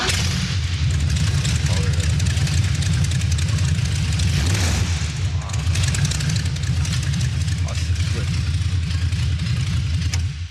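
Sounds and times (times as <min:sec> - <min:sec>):
V8 car engine started with a red push button and running: 0:00.0 - 0:10.4.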